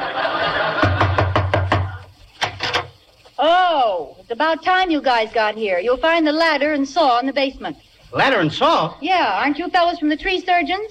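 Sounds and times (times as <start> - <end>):
laughter: 0.0 - 2.1
firm knocking on a door: 0.8 - 2.9
speech: 4.3 - 10.8.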